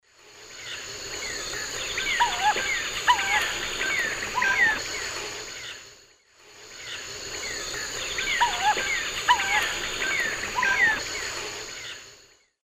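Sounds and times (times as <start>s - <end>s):
Querula purpurata flight calls in the Eastern Lowlands of South America: 0.7s - 5.8s, 7.0s - 12.0s.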